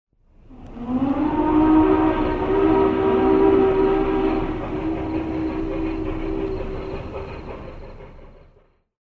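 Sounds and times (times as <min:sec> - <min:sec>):
Hancock three-chime steam whistle: 0:00.5 - 0:08.6
Class 4-6-6-4 steam locomotive long bell: 0:01.7 - 0:08.7.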